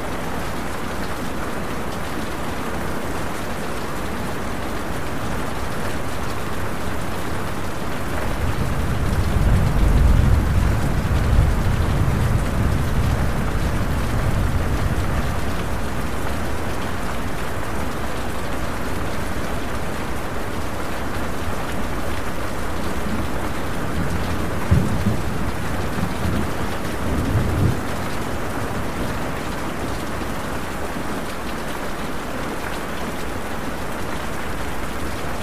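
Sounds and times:
steady rain: 0.0 - 35.4
low rumble of thunder: 8.2 - 15.8, 23.1 - 29.2.

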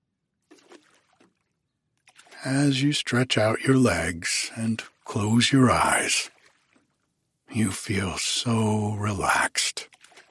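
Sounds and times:
oars of a small rowboat lapping against water: 0.4 - 2.8, 3.7 - 7.9, 9.8 - 10.2
speech: 2.4 - 6.4, 7.5 - 9.9.

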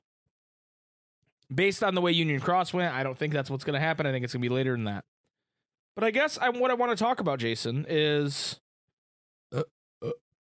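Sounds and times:
speech: 1.5 - 5.2, 6.0 - 8.6, 9.5 - 10.2
short throaty burps: 9.5 - 10.2.

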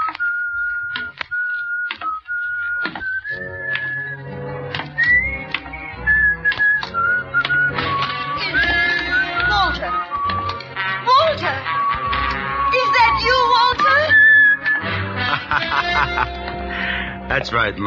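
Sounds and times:
man whistling a melodic tune: 0.0 - 4.3, 4.9 - 10.6, 11.6 - 15.1
laughter: 15.1 - 17.2
speech: 17.4 - 17.8.

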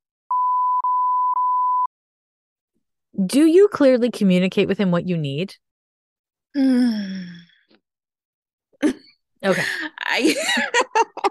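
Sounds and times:
censor bleep over a spoken name: 0.3 - 1.9
speech: 3.2 - 5.6, 6.6 - 7.5, 8.8 - 11.3
laughter: 9.5 - 11.3.

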